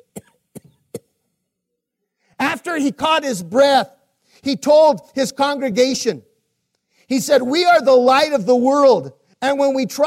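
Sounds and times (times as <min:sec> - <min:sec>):
person acting coughs from oil lamp smoke: 0:00.0 - 0:01.2
speech: 0:02.6 - 0:06.3, 0:07.1 - 0:10.0.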